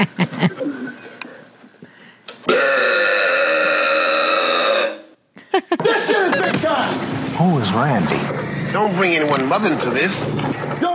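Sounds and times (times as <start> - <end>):
laughter: 0.0 - 1.9, 5.4 - 7.0
softer gulping and throaty noises: 0.0 - 5.5
loud deep rumbling burp: 2.4 - 5.2
speech: 7.8 - 10.8.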